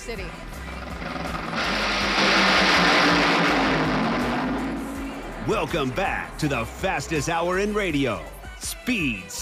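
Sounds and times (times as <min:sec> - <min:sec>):
speech: 0:00.1 - 0:00.8, 0:05.5 - 0:09.4
car engine roaring: 0:00.3 - 0:06.8.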